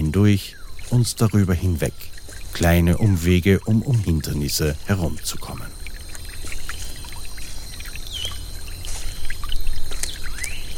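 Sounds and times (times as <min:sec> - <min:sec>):
birds chirping: 0:00.0 - 0:10.7
small stream about half a metre wide burbling and trickling: 0:00.0 - 0:10.7
speech: 0:00.1 - 0:05.8.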